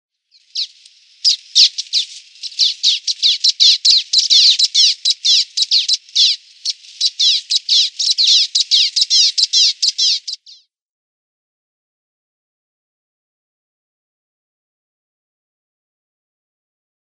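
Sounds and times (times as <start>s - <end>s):
Common Waxbill calls: 0.3s - 10.7s.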